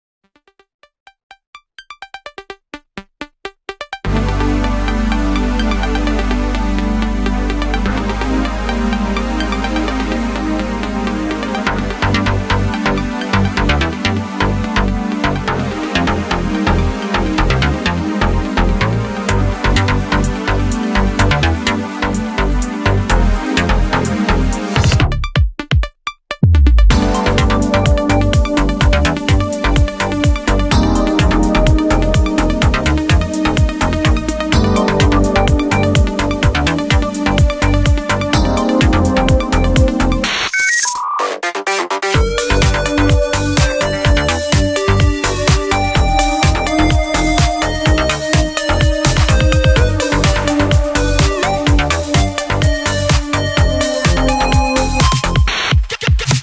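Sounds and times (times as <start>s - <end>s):
minigame music: 1.8s - 25.2s, 26.4s - 55.7s.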